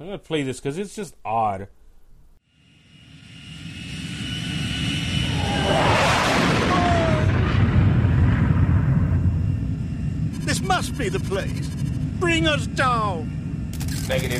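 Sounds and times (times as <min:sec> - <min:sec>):
speech: 0:00.0 - 0:01.8, 0:10.8 - 0:13.4, 0:14.1 - 0:14.3
aircraft engine roaring as plane swings: 0:02.5 - 0:14.3.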